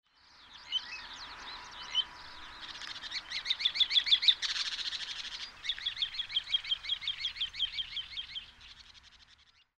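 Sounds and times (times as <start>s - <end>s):
background noise: 0.1s - 9.7s
Little ringed plover calls: 0.6s - 9.7s.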